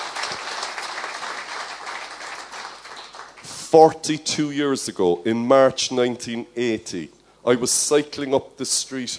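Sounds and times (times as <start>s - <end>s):
audience applauding: 0.0s - 3.5s
speech: 3.7s - 9.1s.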